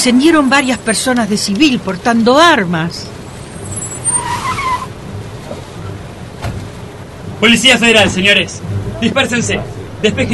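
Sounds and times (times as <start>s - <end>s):
speech: 0.0s - 3.2s, 7.4s - 10.3s
loud engine rumble: 0.0s - 10.3s
vehicles idling: 0.0s - 10.3s
short tire screech of cars skidding to a stop: 3.2s - 10.3s.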